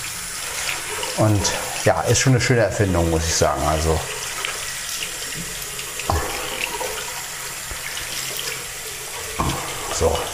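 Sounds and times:
water running from a tap while hands are washed: 0:00.0 - 0:10.3
speech: 0:01.2 - 0:04.2
thump: 0:06.1 - 0:06.5.

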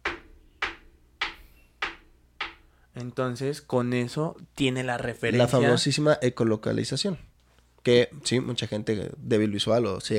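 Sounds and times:
knocks on a hard surface imitating a ball striking a basketball backboard: 0:00.0 - 0:02.6
speech: 0:03.0 - 0:10.1.

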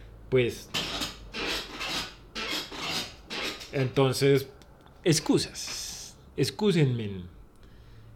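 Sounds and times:
speech: 0:00.3 - 0:00.8, 0:03.7 - 0:05.8, 0:06.4 - 0:07.4
chair creaking: 0:00.7 - 0:04.0.

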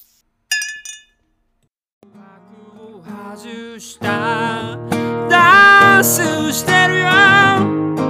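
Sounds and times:
glasses clinking in a toast with milk: 0:00.5 - 0:01.3
speech: 0:03.4 - 0:08.0.

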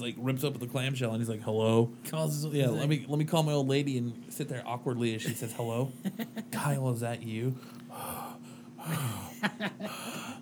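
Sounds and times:
speech: 0:00.0 - 0:08.2, 0:08.8 - 0:10.4
faint steady hum: 0:00.0 - 0:10.4
laughter: 0:05.3 - 0:06.6, 0:08.9 - 0:10.3
person imitating heavy raspy breathing into a phone: 0:07.6 - 0:10.4.

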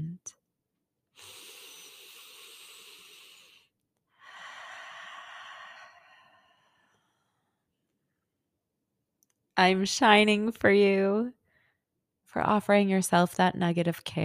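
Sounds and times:
deep breaths: 0:01.2 - 0:07.7
speech: 0:09.6 - 0:11.4, 0:12.4 - 0:14.2.

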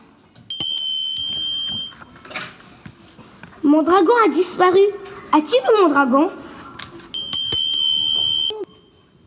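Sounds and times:
bright bell chime signalling a page turn in a read-aloud picture book: 0:00.5 - 0:02.1, 0:07.2 - 0:09.0
speech: 0:03.7 - 0:06.4.

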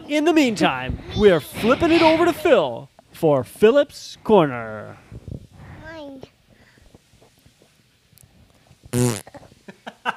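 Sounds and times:
speech: 0:00.1 - 0:05.1, 0:09.0 - 0:09.4
small fart: 0:08.9 - 0:09.4.

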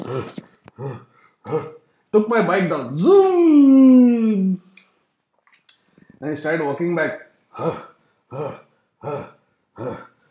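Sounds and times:
voice imitating wheezing, groaning and gasping: 0:00.0 - 0:02.0, 0:07.5 - 0:10.3
speech: 0:00.1 - 0:04.0, 0:06.2 - 0:10.1.

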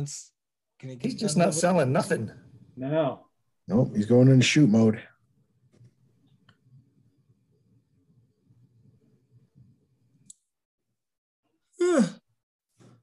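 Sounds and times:
speech: 0:00.0 - 0:05.1, 0:11.8 - 0:12.2
person yawning: 0:11.8 - 0:12.3.

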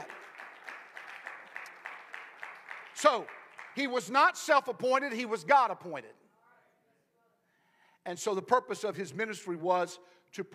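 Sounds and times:
audience clapping hands in praise: 0:00.0 - 0:04.4
speech: 0:03.0 - 0:06.2, 0:08.0 - 0:10.5.

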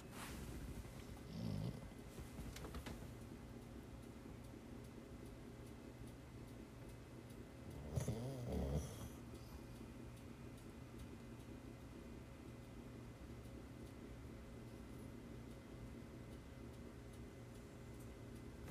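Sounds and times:
faint hiss: 0:00.0 - 0:18.6
dog snoring softly: 0:01.0 - 0:02.0, 0:07.7 - 0:09.6.

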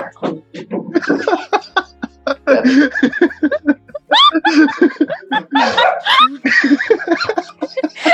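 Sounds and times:
laughter: 0:00.1 - 0:08.1
dogs yelping: 0:05.3 - 0:06.4.

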